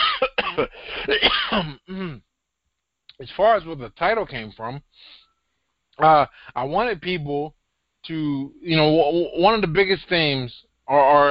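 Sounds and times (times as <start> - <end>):
rough coughs and throat-clearing bursts: 0.0 - 2.2
speech: 0.6 - 2.3, 3.2 - 5.2, 6.0 - 11.2.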